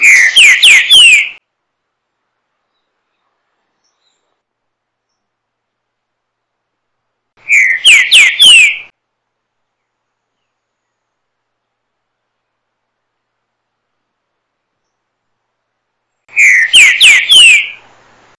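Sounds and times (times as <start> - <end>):
music: 0.0 - 1.4, 7.4 - 8.9, 16.3 - 17.8.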